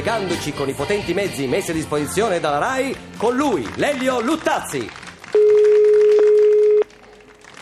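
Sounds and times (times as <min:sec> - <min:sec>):
speech: 0:00.0 - 0:05.5
telephone line tone during call connection: 0:05.4 - 0:06.9.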